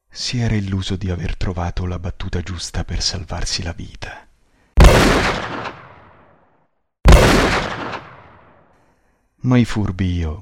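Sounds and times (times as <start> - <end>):
speech: 0.2 - 4.3, 9.4 - 10.4
pistol gunshots in a radio drama: 4.8 - 6.2, 7.1 - 8.6.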